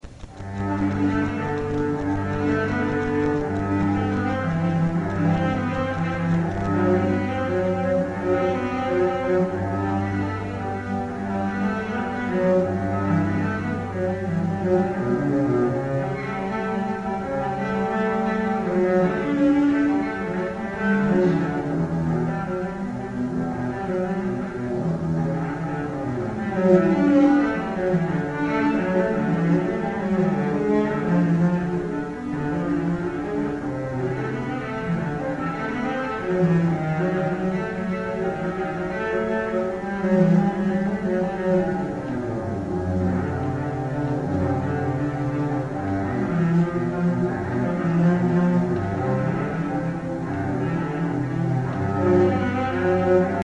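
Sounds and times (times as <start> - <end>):
cello: 0.0 - 53.4.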